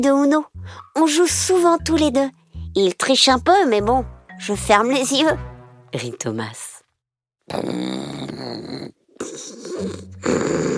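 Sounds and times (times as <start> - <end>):
speech: 0.0 - 6.7, 7.5 - 10.7
sleeping wolf snoring: 7.6 - 10.7.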